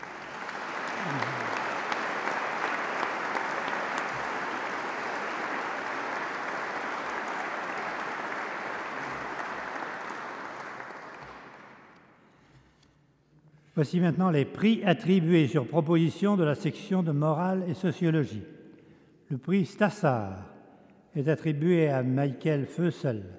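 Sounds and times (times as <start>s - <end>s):
large audience applauding for prize winners: 0.0s - 12.0s
speech: 13.8s - 18.6s, 19.3s - 20.5s, 21.2s - 23.3s.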